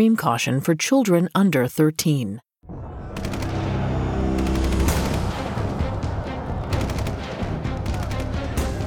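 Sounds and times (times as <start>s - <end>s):
speech: 0.0s - 2.5s
rapid bursts of automatic gunfire: 3.2s - 3.6s, 4.4s - 5.5s, 6.7s - 8.5s
firing and booms: 4.4s - 8.7s.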